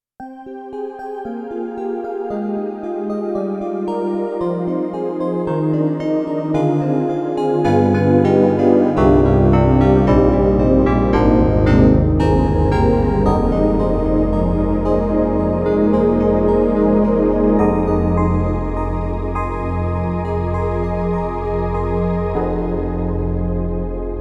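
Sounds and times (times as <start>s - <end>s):
analog electric piano with YAMAHA MU90 DX: 0.7s - 24.1s.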